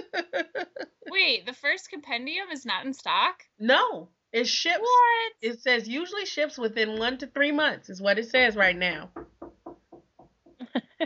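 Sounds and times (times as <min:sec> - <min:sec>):
laughter: 0:00.0 - 0:01.1
speech: 0:01.2 - 0:09.2
knocking: 0:09.1 - 0:10.7.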